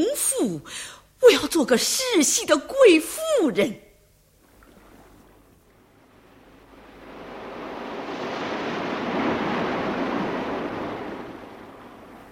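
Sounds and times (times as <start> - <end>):
speech: 0.0 - 3.9
restless sea waves: 4.4 - 12.3.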